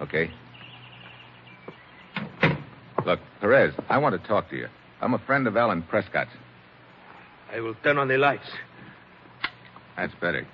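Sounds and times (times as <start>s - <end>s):
speech: 0.0s - 0.4s, 3.1s - 6.4s, 7.5s - 8.7s, 10.0s - 10.5s
door being pushed shut with click and thud: 2.1s - 3.1s.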